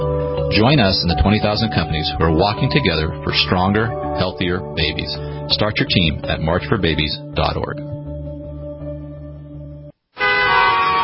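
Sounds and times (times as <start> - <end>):
speech: 0.5 - 7.9
car horns honking in rush hour traffic: 10.2 - 11.0.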